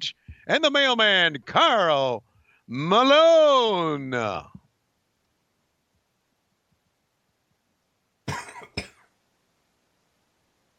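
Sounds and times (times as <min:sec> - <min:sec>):
speech: 0:00.0 - 0:04.6
person coughing: 0:08.3 - 0:09.0.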